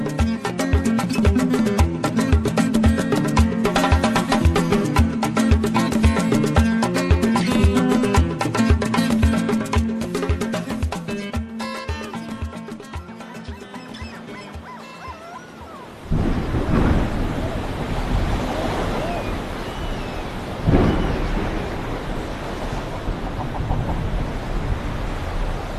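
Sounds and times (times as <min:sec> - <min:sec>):
music: 0:00.0 - 0:15.5
loud waves of heavy sea swell surging and crashing: 0:00.0 - 0:25.7
strong wind roaring over heavy sea swell: 0:15.8 - 0:25.7.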